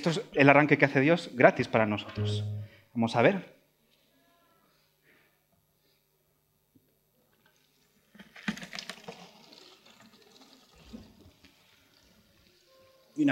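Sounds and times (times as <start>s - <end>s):
speech: 0.0s - 3.6s
water pouring from a water jug: 7.4s - 13.3s.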